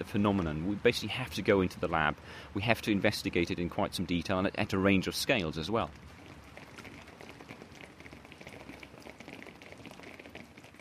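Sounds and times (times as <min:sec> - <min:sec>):
speech: 0:00.0 - 0:06.2
simulated rainfall from a rain simulator in a rainfall simulation laboratory: 0:05.9 - 0:10.7.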